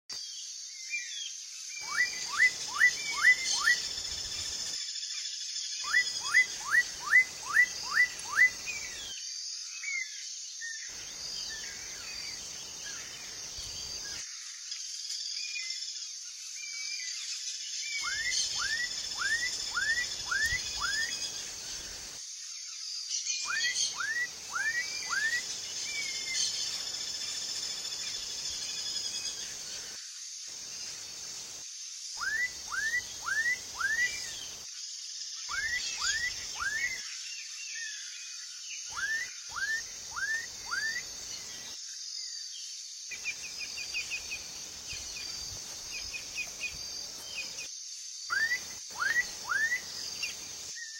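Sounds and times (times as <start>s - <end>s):
person singing: 0.1s - 50.9s.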